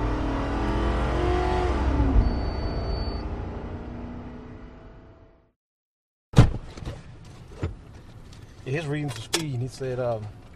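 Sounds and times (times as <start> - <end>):
police car engine accelerating hard over the median: 0.0 - 5.5
speech: 8.7 - 10.4.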